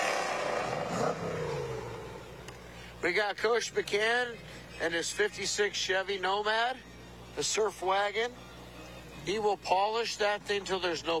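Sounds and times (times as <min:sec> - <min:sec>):
broad roar: 0:00.0 - 0:02.4
1965 Cobra sports car engine idling and revving: 0:00.0 - 0:03.0
speech: 0:03.0 - 0:08.5, 0:09.2 - 0:11.1.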